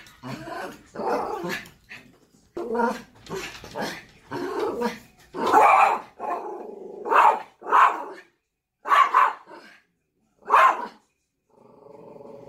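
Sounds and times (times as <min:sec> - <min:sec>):
speech: 0:00.2 - 0:01.7, 0:02.7 - 0:04.0
Spitz dog barking: 0:05.4 - 0:09.6, 0:10.4 - 0:11.0.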